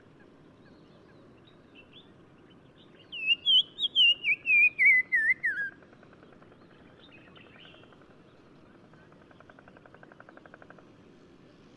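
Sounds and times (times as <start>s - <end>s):
Black-crowned tchagra whistled call in Morocco: 3.1s - 5.8s.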